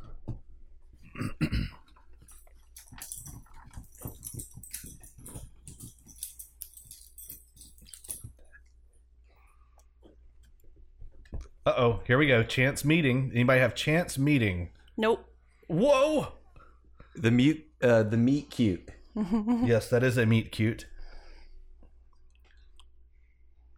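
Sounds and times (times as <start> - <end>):
dog fidgeting in a recording room: 1.9 - 8.6
speech: 11.8 - 16.4, 17.2 - 20.9.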